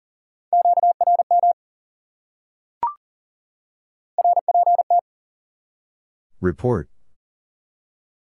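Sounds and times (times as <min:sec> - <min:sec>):
Morse code beeps at 40 words per minute: 0:00.6 - 0:01.6, 0:04.2 - 0:05.0
speech: 0:06.4 - 0:06.9.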